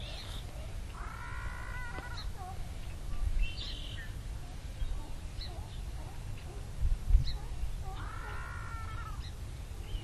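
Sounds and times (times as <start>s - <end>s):
common murre growling calls: 0.0s - 2.9s, 4.4s - 9.3s
constant low roar: 0.0s - 10.0s.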